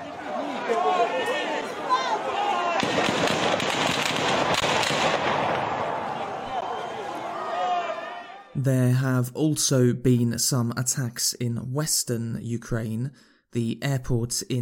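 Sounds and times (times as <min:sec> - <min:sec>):
crowd of protesters: 0:00.0 - 0:08.6
soldiers firing guns into the air: 0:02.8 - 0:06.1
speech: 0:08.6 - 0:14.5.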